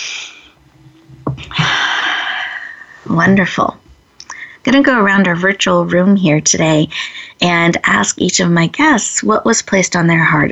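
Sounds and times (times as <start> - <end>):
deep breath during a guided reflective exercise: 1.5 - 3.1, 4.3 - 4.6, 6.9 - 7.4
speech: 3.1 - 3.9, 4.6 - 10.4.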